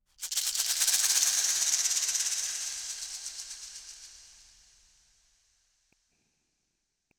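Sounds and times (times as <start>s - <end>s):
shaker hit: 0.2s - 4.8s.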